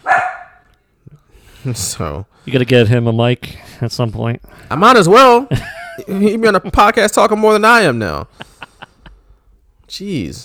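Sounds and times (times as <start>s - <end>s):
dog barking: 0.0s - 0.7s
speech: 1.6s - 8.5s, 9.9s - 10.4s
laughter: 5.5s - 6.9s, 8.1s - 9.4s.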